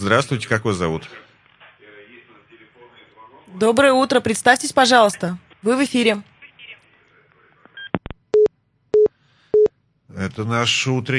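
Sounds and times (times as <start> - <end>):
speech: 0.0 - 1.3, 3.5 - 6.3, 10.2 - 11.1
telephone busy tone after a radio phone-in caller hung up: 7.8 - 9.7.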